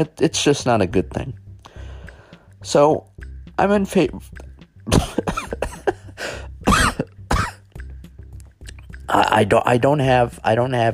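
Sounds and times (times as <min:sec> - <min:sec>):
speech: 0:00.0 - 0:01.4, 0:02.6 - 0:06.4, 0:09.1 - 0:10.9
gasping breaths: 0:01.6 - 0:02.6, 0:06.1 - 0:06.6
coughing fit from choking on saliva: 0:04.9 - 0:07.8.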